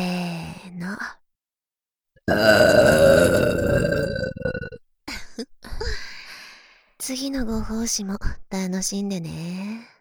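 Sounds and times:
two people burping simultaneously: 0:02.3 - 0:04.8
speech: 0:07.1 - 0:09.8.

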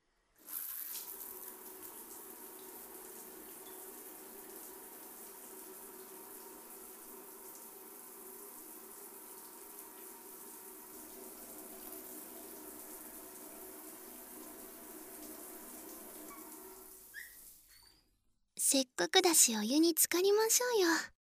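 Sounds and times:
shower water running as someone rinses off: 0:00.4 - 0:17.9
speech: 0:18.7 - 0:21.1.

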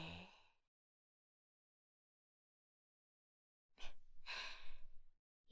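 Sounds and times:
slow deep human breathing: 0:04.2 - 0:05.0.

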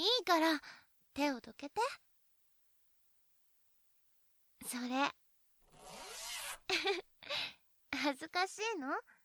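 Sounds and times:
speech: 0:00.0 - 0:02.0, 0:04.6 - 0:05.2, 0:05.8 - 0:09.2
clothing zipper being pulled down: 0:05.6 - 0:06.7.

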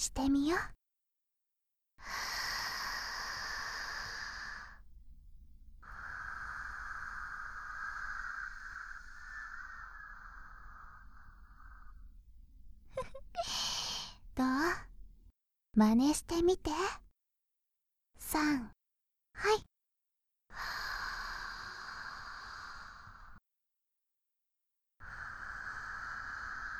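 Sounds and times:
speech: 0:00.0 - 0:00.8, 0:15.8 - 0:17.0, 0:18.2 - 0:18.8, 0:19.4 - 0:19.7
slow deep breath: 0:02.0 - 0:14.9, 0:20.5 - 0:23.4, 0:25.0 - 0:26.7.

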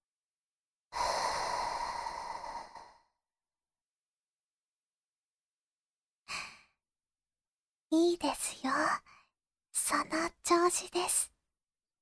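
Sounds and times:
slow exhale through the mouth during a guided breathing exercise: 0:00.9 - 0:03.2
speech: 0:07.9 - 0:09.1, 0:09.8 - 0:11.3.

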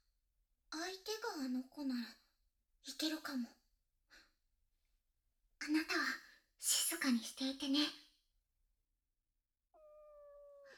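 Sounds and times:
speech: 0:01.0 - 0:02.2, 0:02.8 - 0:04.2, 0:05.6 - 0:08.0
cat meowing: 0:09.8 - 0:10.7.

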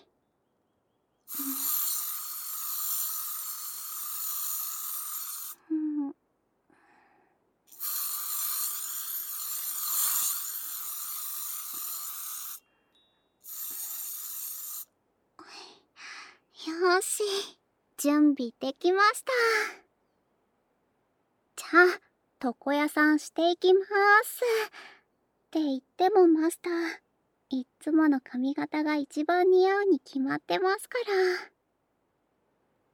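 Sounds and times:
anti-static spray hissing from an aerosol can: 0:01.3 - 0:05.6, 0:07.7 - 0:12.6, 0:13.5 - 0:14.9
speech: 0:18.0 - 0:19.8, 0:21.7 - 0:24.9, 0:25.5 - 0:31.5.

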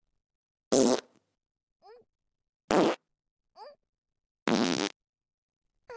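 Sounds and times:
loud farts: 0:00.7 - 0:01.2, 0:02.7 - 0:03.0, 0:04.5 - 0:05.0.

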